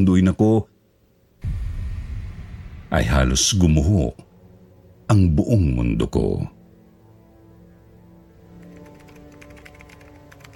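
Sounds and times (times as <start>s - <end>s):
speech: 0.0s - 0.7s, 2.9s - 4.3s, 5.1s - 6.6s
soft sustained musical drone: 1.4s - 10.5s
typing on a computer keyboard: 8.5s - 10.5s.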